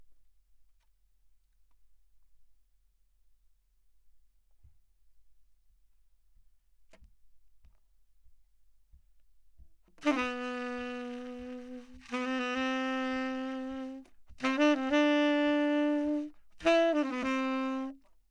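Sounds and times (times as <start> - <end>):
saxophone: 10.0 - 18.2.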